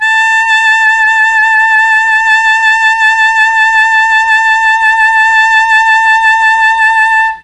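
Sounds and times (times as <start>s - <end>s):
alto saxophone playing A3: 0.0s - 7.4s.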